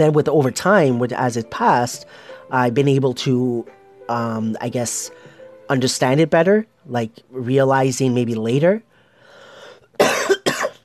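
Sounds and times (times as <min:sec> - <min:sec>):
speech: 0:00.0 - 0:08.9
breathy sound: 0:02.0 - 0:02.5, 0:08.9 - 0:10.0
harsh coughs: 0:10.0 - 0:10.8.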